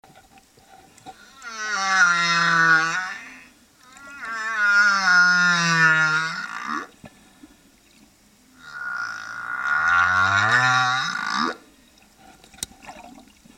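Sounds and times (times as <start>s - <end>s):
whale sound: 1.1s - 7.0s, 8.5s - 11.8s.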